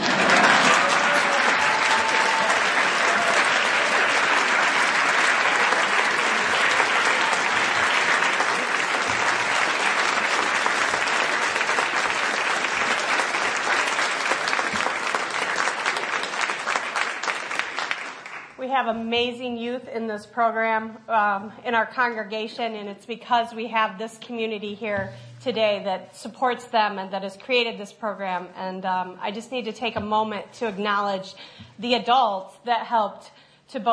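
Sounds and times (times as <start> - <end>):
large audience clapping: 0.0 - 18.6
speech: 18.9 - 33.9.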